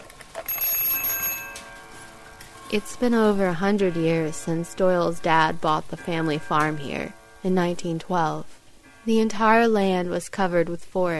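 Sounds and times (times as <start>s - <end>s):
anniversary clock bright metallic ringing tone: 0.3s - 11.1s
small silver anniversary clock with glass dome clicking: 0.9s - 8.2s
speech: 2.7s - 11.1s.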